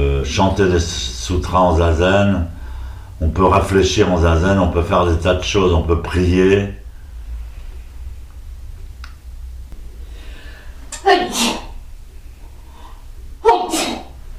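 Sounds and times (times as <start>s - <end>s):
low steady hum: 0.0s - 14.3s
speech: 0.2s - 2.6s, 3.2s - 6.8s
person sneezing: 11.0s - 11.8s, 13.4s - 14.2s.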